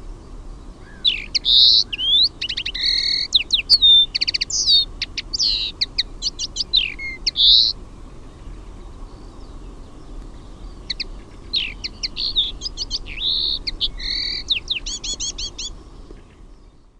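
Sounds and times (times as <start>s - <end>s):
common linnet twittering: 0.8s - 16.8s.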